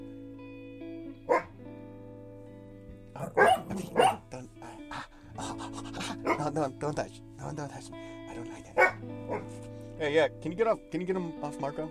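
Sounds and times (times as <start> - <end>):
dog barking: 1.3 - 1.6, 3.2 - 4.2, 5.4 - 6.6, 8.8 - 9.6
dog growling low: 3.1 - 6.6, 8.8 - 9.6
speech: 3.2 - 4.6, 6.2 - 11.8.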